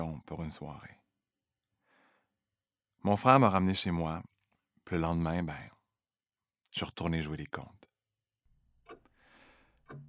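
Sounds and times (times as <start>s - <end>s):
speech: 0.2s - 1.0s, 3.0s - 5.8s, 6.7s - 7.9s
old clock ticking: 8.8s - 10.0s.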